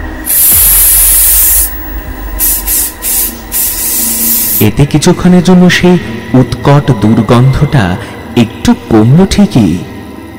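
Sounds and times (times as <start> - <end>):
body spray hissing from a bottle over a bed and room: 0.3 - 4.6
speech: 4.6 - 9.9.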